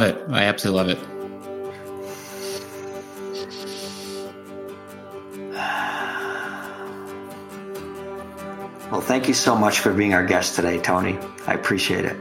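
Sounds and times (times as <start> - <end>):
speech: 0.0 - 1.2, 9.0 - 12.1
soft music: 0.0 - 12.1
two people taking a slow deep breath together: 1.6 - 4.6, 5.4 - 7.8.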